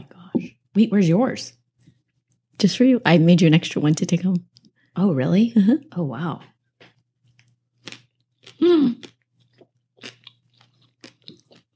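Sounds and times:
speech: 0:00.8 - 0:01.6, 0:02.6 - 0:06.5, 0:08.6 - 0:09.1
crunchy chewing on a baked noodle topping: 0:07.2 - 0:11.7.

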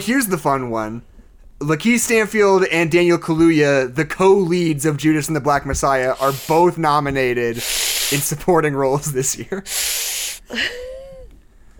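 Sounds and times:
speech: 0:00.0 - 0:10.9
brief breathy burst with a faint sliding vocal tone: 0:06.1 - 0:06.8, 0:07.5 - 0:08.4, 0:09.6 - 0:10.6
person sharply drawing air in through their teeth: 0:06.1 - 0:06.8, 0:07.5 - 0:08.4, 0:09.6 - 0:10.5.

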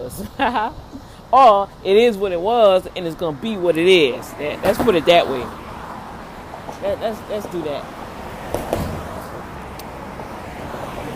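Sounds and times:
charter bus engine and tires rumbling along the road: 0:00.0 - 0:11.1
constant traffic noise: 0:00.0 - 0:11.1
speech: 0:00.1 - 0:05.6, 0:06.8 - 0:08.0.

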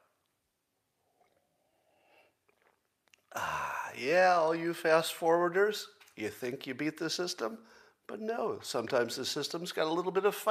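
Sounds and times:
person sipping a drink: 0:01.0 - 0:04.0
swallow: 0:01.0 - 0:04.0
speech: 0:03.4 - 0:10.4.

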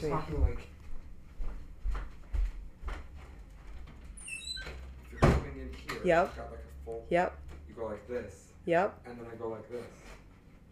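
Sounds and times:
speech: 0:00.0 - 0:00.8, 0:05.8 - 0:10.2
door being pulled and pushed shut: 0:05.2 - 0:05.6.

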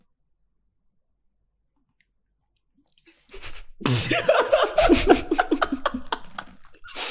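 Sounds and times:
wet smacking mouth sounds with squishes and clicks: 0:02.8 - 0:04.2, 0:04.8 - 0:07.0
speech: 0:03.8 - 0:05.4
laughter: 0:04.0 - 0:07.0.

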